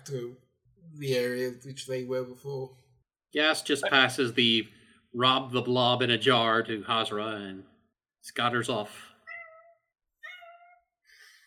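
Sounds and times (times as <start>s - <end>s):
speech: 0.1s - 9.1s
unhappy cat meowing: 9.3s - 10.8s.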